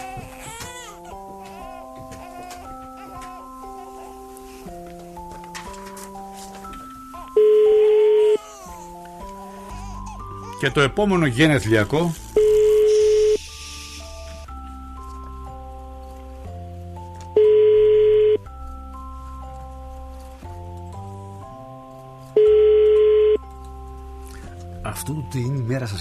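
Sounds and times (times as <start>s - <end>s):
telephone ringing tone: 7.4s - 8.4s, 12.4s - 13.4s, 17.4s - 18.4s, 22.4s - 23.4s
speech: 10.6s - 12.2s
electronic dialing-style tones stepping between pitches: 12.4s - 13.4s, 17.4s - 18.4s, 22.4s - 23.4s.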